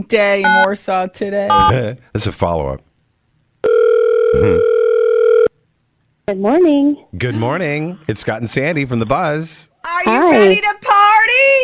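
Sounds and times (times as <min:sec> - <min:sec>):
speech: 0:00.0 - 0:02.9, 0:04.3 - 0:04.8, 0:06.3 - 0:10.9
telephone dial tone while placing a call: 0:03.6 - 0:05.5.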